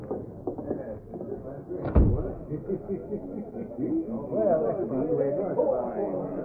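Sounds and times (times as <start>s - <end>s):
voices and room murmur: 0.0s - 6.4s
door closing thump: 1.8s - 2.5s
laughter: 2.2s - 6.4s.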